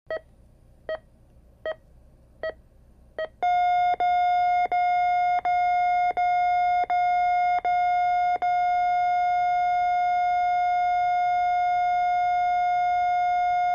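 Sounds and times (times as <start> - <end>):
heart monitor sequence: 3.2 - 13.7.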